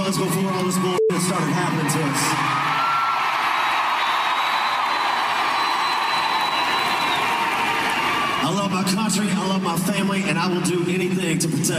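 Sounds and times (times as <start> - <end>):
large concert crowd cheering: 0.0 - 9.8
speech: 0.1 - 2.9, 8.5 - 11.7
concert crowd applause: 1.8 - 8.8.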